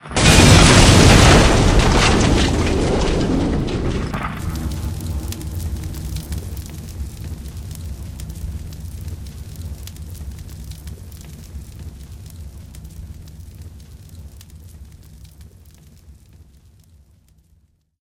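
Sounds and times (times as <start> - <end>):
helicopter explosion: 0.0 - 7.6.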